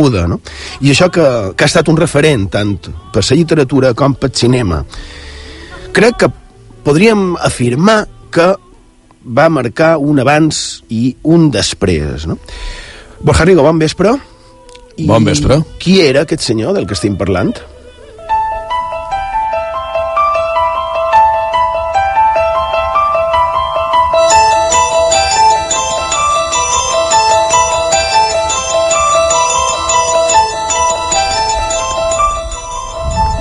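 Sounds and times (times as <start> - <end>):
speech: 0.0 - 5.3, 5.9 - 8.6, 9.2 - 14.3, 15.0 - 17.8
bright repeating piano theme: 18.6 - 33.3.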